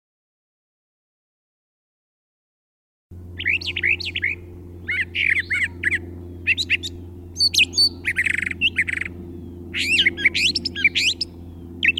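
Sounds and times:
steady low hum: 3.1s - 11.9s
brown thrasher singing: 3.4s - 11.9s.

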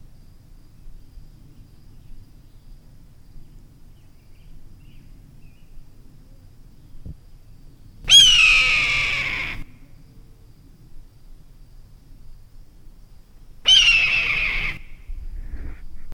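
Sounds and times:
red-tailed hawk screaming: 8.1s - 9.7s, 13.7s - 15.0s.

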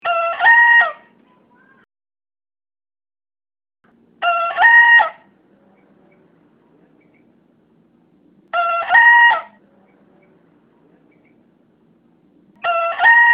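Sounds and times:
young bekisar green junglefowl hybrid crowing: 0.0s - 1.1s, 4.2s - 5.3s, 8.5s - 9.6s, 12.6s - 13.3s.

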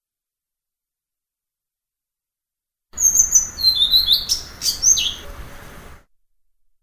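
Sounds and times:
blue-throated flycatcher song: 3.0s - 5.9s.

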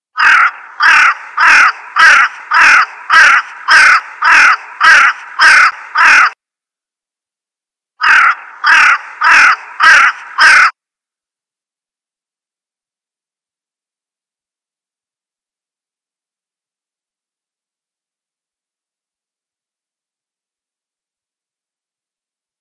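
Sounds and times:
crow calling: 0.2s - 6.4s, 8.0s - 10.8s.

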